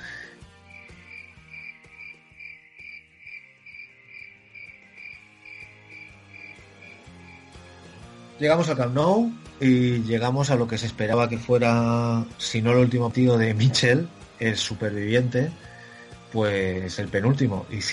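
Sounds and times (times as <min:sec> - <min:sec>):
cricket chirping: 0:00.7 - 0:07.5
speech: 0:08.4 - 0:15.7, 0:16.3 - 0:17.9.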